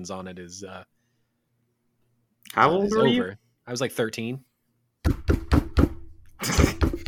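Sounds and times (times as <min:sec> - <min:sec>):
speech: 0:00.0 - 0:01.0, 0:02.5 - 0:05.2
knocking on a door: 0:05.1 - 0:06.1, 0:06.7 - 0:07.0.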